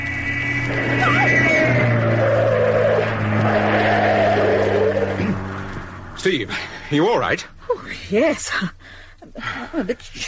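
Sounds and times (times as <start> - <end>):
car tires squealing and screeching on a narrow road: 0.0 - 6.4
car engine roaring: 0.0 - 7.6
speech: 0.7 - 1.0, 6.2 - 10.2.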